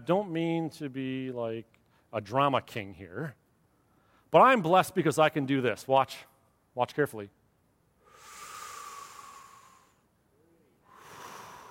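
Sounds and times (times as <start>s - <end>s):
speech: 0.0s - 3.4s, 4.3s - 7.4s
person taking a deep breath in and out: 8.0s - 11.6s.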